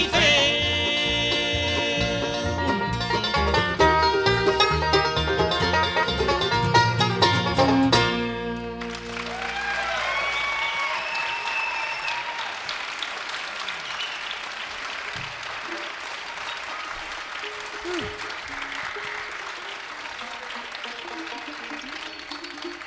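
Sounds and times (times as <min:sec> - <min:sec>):
crowd applause after a band's song in a concert hall: 0:00.0 - 0:22.8
whistles and cheers in a concert hall: 0:08.8 - 0:22.8.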